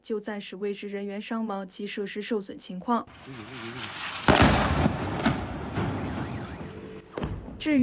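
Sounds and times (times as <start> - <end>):
speech: 0.0 - 5.2, 7.6 - 7.8
explosions during an attack: 3.1 - 7.0.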